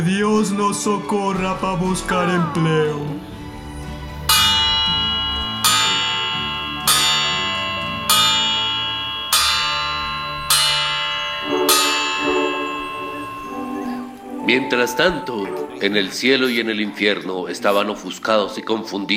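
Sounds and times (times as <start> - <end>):
speech: 0.0 - 3.4, 14.5 - 19.1
church bells tolling: 1.3 - 16.5.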